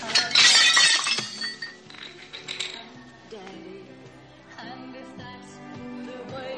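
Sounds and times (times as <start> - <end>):
ceramic cup thrown to a hard floor shattering: 0.0 - 3.0
ceramic shards tinkling and scattering: 0.0 - 3.1.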